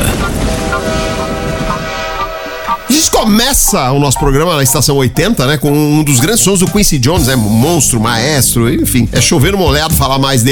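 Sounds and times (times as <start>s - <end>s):
train departing from a station: 0.0s - 4.2s
speech: 3.2s - 10.5s.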